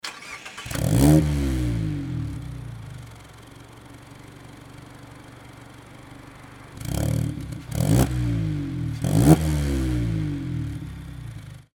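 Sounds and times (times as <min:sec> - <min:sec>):
ND roadster car: 0:00.0 - 0:11.7.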